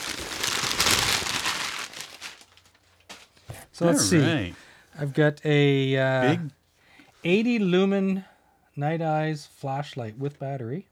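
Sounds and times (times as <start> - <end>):
packing paper being crumpled while unboxing: 0.0 - 3.4
speech: 3.8 - 6.6, 7.2 - 10.9.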